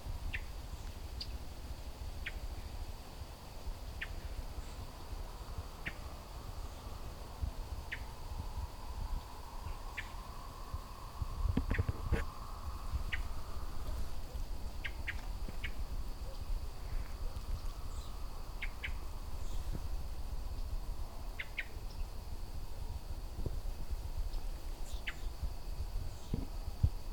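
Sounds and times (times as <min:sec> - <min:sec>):
low outdoor rumble: 0:00.0 - 0:27.1
steady high insect drone: 0:00.0 - 0:27.1
songbird giving agitated chip calls at a house cat: 0:00.3 - 0:01.4, 0:02.2 - 0:02.5, 0:04.0 - 0:04.9, 0:05.8 - 0:06.1, 0:07.8 - 0:08.2, 0:09.2 - 0:10.5, 0:13.0 - 0:13.6, 0:14.3 - 0:19.9, 0:21.4 - 0:22.2, 0:24.3 - 0:25.4.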